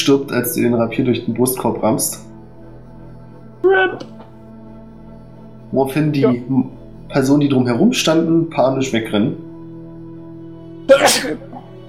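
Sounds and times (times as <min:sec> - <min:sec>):
speech: 0:00.0 - 0:02.3, 0:03.6 - 0:04.2, 0:05.7 - 0:09.4, 0:10.9 - 0:11.5
sneeze: 0:10.9 - 0:11.7.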